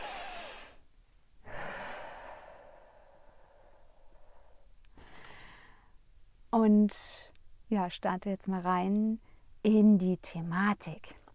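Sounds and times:
deep breathing in and out: 0.0s - 0.8s, 1.4s - 6.0s
speech: 6.6s - 11.2s.

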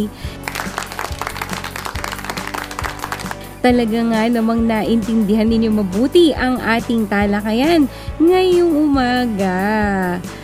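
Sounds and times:
speech: 0.0s - 0.4s, 3.6s - 10.4s
music: 0.0s - 10.4s
group of children clapping: 0.4s - 3.6s.

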